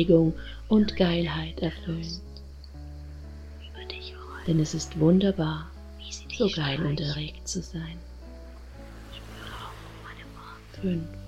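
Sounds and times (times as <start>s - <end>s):
speech: 0.0s - 2.3s, 4.5s - 8.1s, 10.8s - 11.2s
ocean waves washing onto a beach: 8.8s - 10.7s.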